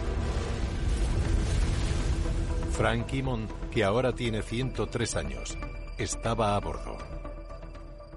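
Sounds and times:
250-kilogram bomb striking a 15-centimetre steel battleship deck: 0.0 - 3.3
speech: 2.8 - 7.2.

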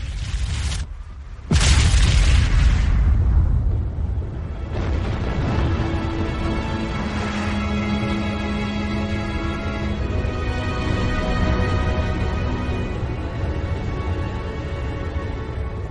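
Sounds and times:
low rumble: 0.0 - 15.9
deep explosion boom depicting a supernova: 1.4 - 6.5
sustained tonal drone: 5.8 - 15.9.

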